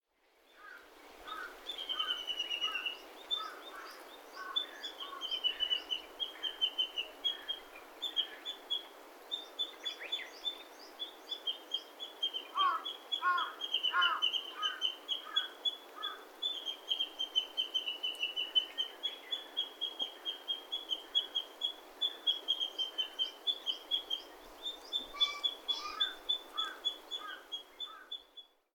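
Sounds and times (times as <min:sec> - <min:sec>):
Japanese bush warbler in Saitama: 0:01.2 - 0:28.7.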